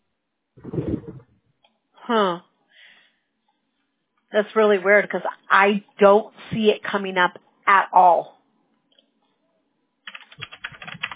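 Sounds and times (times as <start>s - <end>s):
speech: 2.1s - 2.5s, 4.4s - 8.4s
rapid computer keyboard typing: 10.0s - 11.1s.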